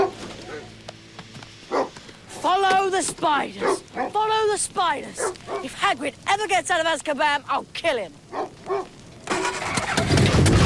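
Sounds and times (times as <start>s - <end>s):
speech: 2.9s - 8.8s
battered car engine starting up: 9.2s - 10.6s.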